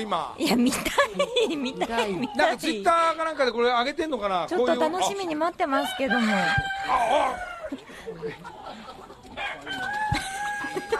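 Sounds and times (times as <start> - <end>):
speech: 0.0 - 9.9
laughter: 0.4 - 2.8, 6.2 - 9.4, 10.0 - 10.9
flock of egg-laying chickens clucking in a henhouse: 1.1 - 10.9
sustained rooster calls in a henhouse: 5.8 - 7.8, 9.4 - 10.9.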